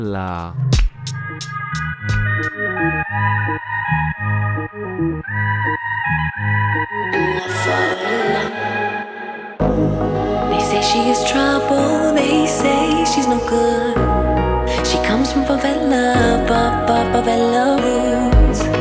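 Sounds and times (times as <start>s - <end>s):
speech: 0.0s - 0.8s, 1.4s - 8.8s, 9.8s - 18.6s
upbeat pop song with pulsing bass and synth chords: 0.1s - 3.3s, 7.0s - 18.7s.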